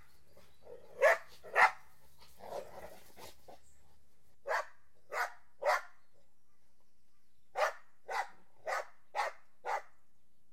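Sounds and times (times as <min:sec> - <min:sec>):
dog barking: 0:01.0 - 0:01.9, 0:04.4 - 0:05.9, 0:07.6 - 0:09.9.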